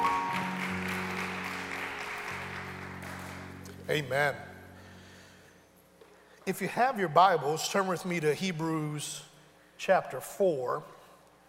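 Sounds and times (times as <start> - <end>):
large crowd applause: 0.0 - 3.6
sustained organ or keyboard chords: 0.0 - 5.6
speech: 3.9 - 4.5, 6.4 - 11.0.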